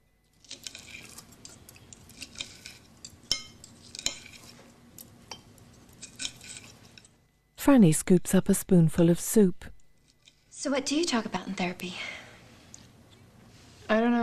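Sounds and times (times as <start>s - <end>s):
knife and fork scraping a plate as salad leaves are cut: 0.3s - 7.2s
speech: 7.6s - 9.7s, 10.6s - 12.2s, 13.9s - 14.2s.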